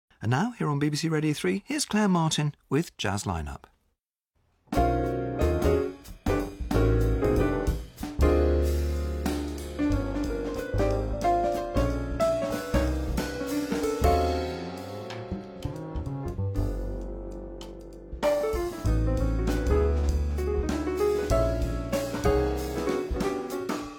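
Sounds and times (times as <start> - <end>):
speech: 0.2 - 3.7
jazz trio playing live instrumental jazz at a festival: 4.8 - 23.9.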